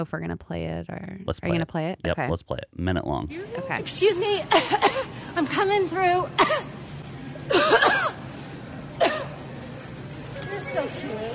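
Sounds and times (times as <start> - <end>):
speech: 0.0 - 6.8, 10.7 - 11.3
woman coughing raspily in a grocery store: 4.5 - 5.2, 6.4 - 6.7, 7.5 - 8.2, 9.0 - 9.4.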